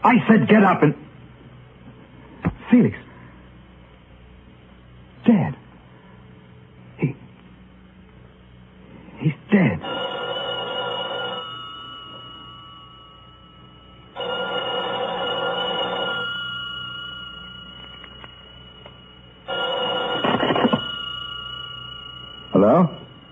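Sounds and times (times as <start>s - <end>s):
speech: 0.0s - 1.1s, 2.7s - 3.0s, 5.2s - 5.6s, 9.2s - 10.2s, 22.6s - 23.0s
telephone ringing: 9.8s - 23.2s.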